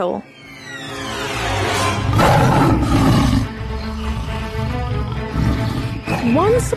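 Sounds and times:
speech: 0.0s - 0.8s, 6.2s - 6.7s
tiger roaring: 1.6s - 6.5s.

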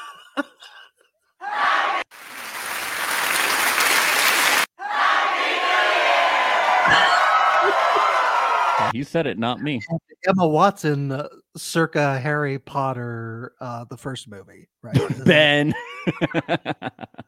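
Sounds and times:
speech: 0.4s - 0.6s, 8.8s - 17.2s
crowd cheering: 1.4s - 9.0s
crowd applause: 2.2s - 4.7s, 6.6s - 8.9s
laughter: 6.8s - 8.9s, 14.8s - 17.2s.

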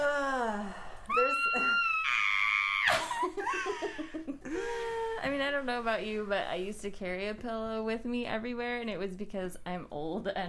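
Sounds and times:
people screaming with high-pitched drawn-out screams: 1.1s - 3.2s
giggling and playful vocal noises: 2.9s - 5.2s
speech: 5.2s - 10.4s.

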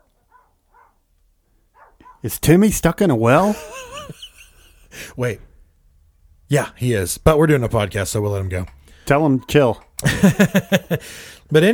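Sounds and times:
dog barking: 0.0s - 1.1s, 1.7s - 2.3s
low steady hum: 0.0s - 11.7s
speech: 2.2s - 3.9s, 5.0s - 5.5s, 6.5s - 11.7s
laughter: 3.4s - 5.1s, 10.0s - 11.2s.

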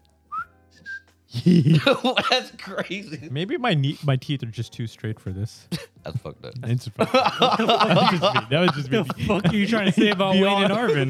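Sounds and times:
person whistling: 0.3s - 1.2s
laughter: 1.3s - 4.0s, 5.7s - 11.0s
speech: 1.4s - 11.0s.

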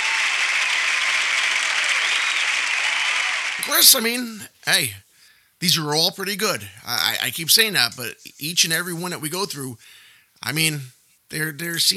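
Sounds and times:
crowd applause: 0.0s - 4.0s
speech: 3.6s - 11.9s.

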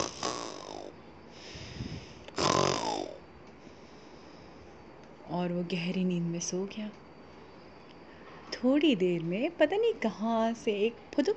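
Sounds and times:
voice imitating a lion snoring loudly in deep sleep: 0.0s - 0.9s, 2.3s - 3.2s
quiet breath: 1.3s - 2.3s, 3.5s - 5.0s
speech: 5.4s - 7.0s, 8.6s - 11.3s.

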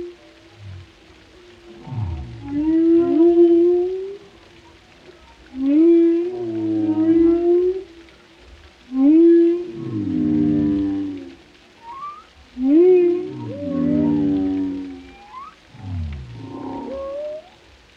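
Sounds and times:
whale song: 0.0s - 8.2s, 8.9s - 17.9s
whale whoop and long harmonic moans: 1.6s - 4.2s, 5.6s - 8.0s, 8.9s - 17.7s
thin upslurred whale squeaks: 11.8s - 15.6s, 16.5s - 17.6s.

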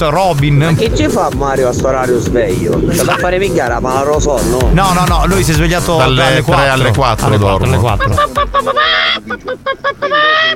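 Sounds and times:
speech: 0.0s - 10.5s
laughter: 2.8s - 3.9s, 6.0s - 10.5s
hen clucking and squawking: 6.7s - 10.5s.

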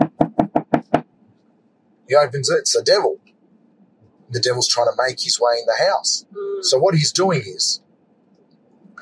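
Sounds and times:
firm knocking on a wooden door: 0.0s - 1.1s
speech: 2.1s - 3.2s, 4.3s - 7.8s.

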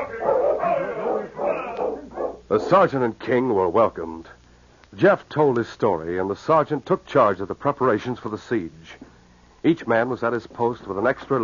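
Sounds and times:
sled dog team barking and yipping: 0.0s - 2.5s
speech: 2.5s - 9.0s, 9.6s - 11.4s.

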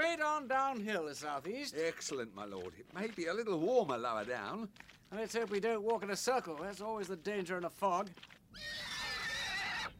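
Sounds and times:
speech: 0.4s - 9.0s
frightened horse whinnying: 8.5s - 9.9s.

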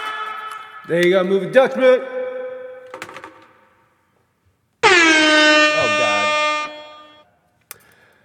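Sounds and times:
speech: 0.9s - 2.1s
air horn blast: 4.8s - 7.2s.

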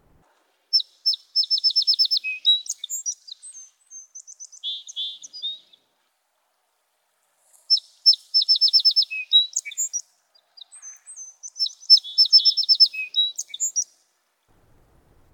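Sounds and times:
song sparrows singing back and forth: 1.0s - 5.9s, 7.7s - 14.0s.

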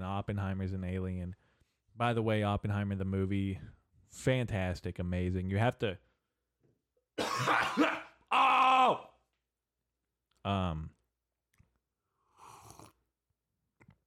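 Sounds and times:
speech: 0.2s - 6.1s, 7.4s - 8.0s, 10.4s - 11.0s
man coughing: 7.2s - 8.2s.

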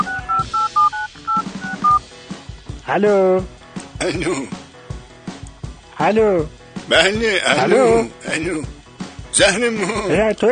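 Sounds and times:
telephone keypad tones as a phone number is dialed: 0.0s - 2.0s
speech: 2.9s - 4.6s, 6.0s - 8.8s, 9.4s - 10.5s.

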